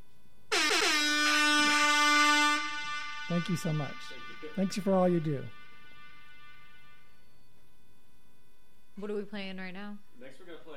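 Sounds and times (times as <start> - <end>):
air horn blasts: 0.5 - 7.4
speech: 3.3 - 5.6, 9.0 - 10.7.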